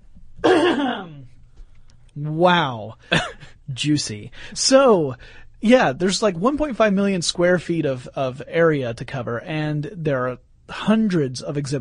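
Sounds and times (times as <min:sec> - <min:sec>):
loud rough throat clearing: 0:00.4 - 0:01.3
speech: 0:02.2 - 0:11.7.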